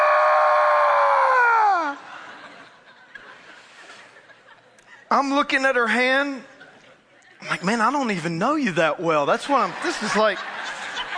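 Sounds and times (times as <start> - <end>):
voice imitating a woman's bloodcurdling scream: 0.0 - 2.1
laughter: 1.5 - 5.3, 6.5 - 7.9, 9.4 - 11.1
speech: 5.1 - 6.5, 7.5 - 10.5.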